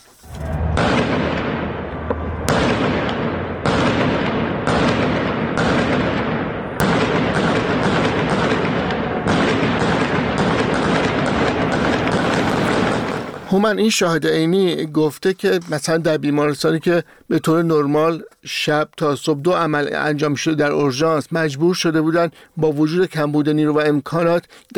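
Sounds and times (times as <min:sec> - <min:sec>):
harsh roar: 0:00.0 - 0:14.0
gunfire bursts during a street gathering: 0:02.5 - 0:13.7
speech: 0:13.6 - 0:24.7.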